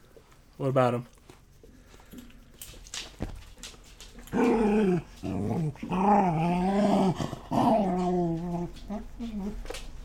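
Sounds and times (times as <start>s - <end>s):
faint noise: 0.0s - 10.0s
speech: 0.6s - 1.2s, 4.3s - 9.8s
female dog growling into the microphone: 4.3s - 9.6s.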